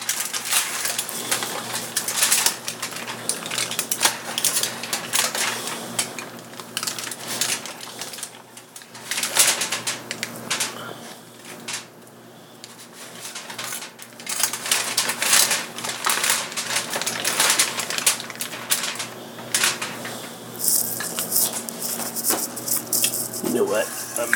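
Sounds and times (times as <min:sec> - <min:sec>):
aluminium foil crinkling as it is wrapped around ears of corn: 0:00.0 - 0:24.3.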